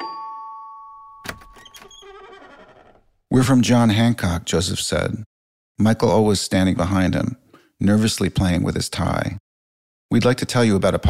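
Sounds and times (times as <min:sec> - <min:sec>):
doorbell chime ringing: 0:00.0 - 0:01.2
speech: 0:03.4 - 0:09.4, 0:10.1 - 0:11.0.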